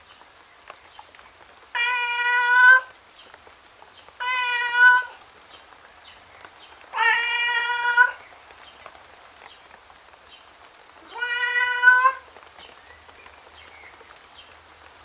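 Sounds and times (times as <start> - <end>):
male tom cat meowing plaintively outdoors in the rain: 1.8 - 2.9, 4.2 - 5.2, 6.9 - 8.2, 11.0 - 12.3.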